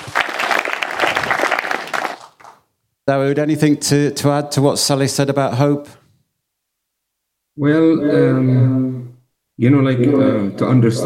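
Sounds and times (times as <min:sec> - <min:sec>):
audience applause at a panel discussion: 0:00.0 - 0:02.6
speech: 0:03.1 - 0:06.0, 0:07.6 - 0:08.8, 0:09.6 - 0:11.0.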